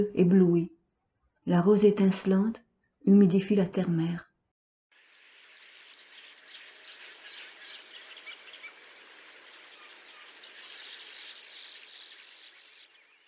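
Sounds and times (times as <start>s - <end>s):
speech: 0.0s - 0.8s, 1.5s - 4.3s
bird on a twig chirping and twittering: 5.0s - 13.2s.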